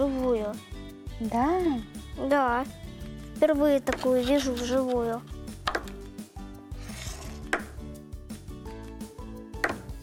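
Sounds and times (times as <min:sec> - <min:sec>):
steady music: 0:00.0 - 0:10.0
speech: 0:01.2 - 0:05.4
knife chopping food on a cutting board: 0:03.9 - 0:04.1, 0:05.6 - 0:06.1, 0:06.9 - 0:07.8, 0:09.6 - 0:09.9.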